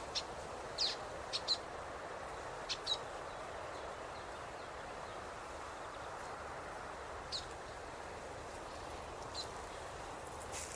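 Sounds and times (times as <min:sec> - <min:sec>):
common waxbill calls: 0:00.0 - 0:01.7, 0:02.6 - 0:04.2
soft background hiss: 0:00.0 - 0:10.7.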